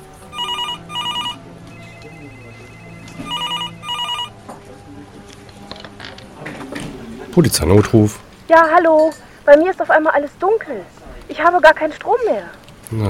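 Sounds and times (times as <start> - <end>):
telephone ringing with an incoming call: 0.3 - 4.4
speech: 7.4 - 13.0.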